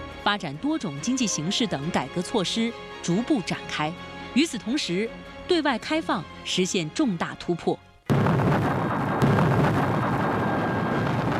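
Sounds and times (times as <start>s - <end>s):
speech: 0.2s - 7.8s
mountain-clearing rock blasting explosions at the Shekou Industrial Zone: 8.1s - 11.3s.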